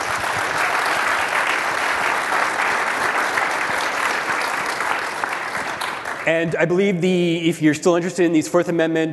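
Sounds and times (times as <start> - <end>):
conference panel audience applause: 0.0 - 6.5
speech: 6.3 - 9.1.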